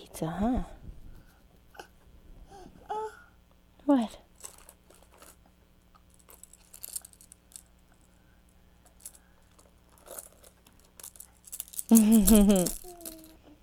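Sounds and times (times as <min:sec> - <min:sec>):
speech: 0:00.2 - 0:00.8, 0:03.9 - 0:04.2, 0:11.9 - 0:12.8
tossed keys jingling and clattering: 0:04.4 - 0:05.4, 0:06.1 - 0:08.0, 0:08.8 - 0:13.4.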